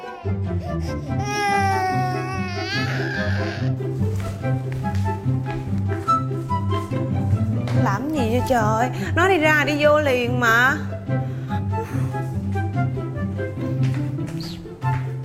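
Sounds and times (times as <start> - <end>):
baby crying loudly: 0.0 - 3.8
rhythmic music: 0.0 - 15.2
speech: 0.2 - 1.5, 8.1 - 11.0.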